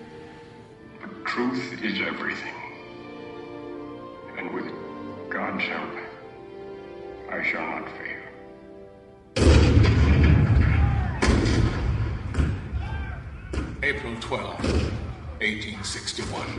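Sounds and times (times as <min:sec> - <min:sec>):
speech: 0:01.3 - 0:02.6, 0:05.4 - 0:06.0, 0:07.3 - 0:08.1, 0:13.8 - 0:16.5
cannon fire: 0:09.4 - 0:12.8, 0:14.6 - 0:15.2
people shouting: 0:10.4 - 0:11.7, 0:12.4 - 0:13.7, 0:14.9 - 0:16.0.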